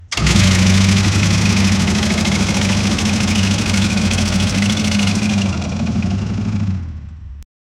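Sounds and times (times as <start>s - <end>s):
tractor engine: 0.0s - 7.3s.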